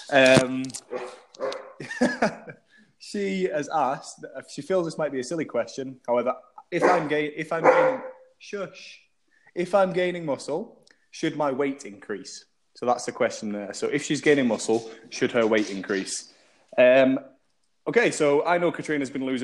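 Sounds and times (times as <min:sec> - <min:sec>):
speech: 0:00.1 - 0:01.2, 0:01.8 - 0:09.0, 0:09.6 - 0:19.4
dog barking: 0:00.9 - 0:01.8, 0:06.8 - 0:08.3
laughter: 0:01.8 - 0:02.6.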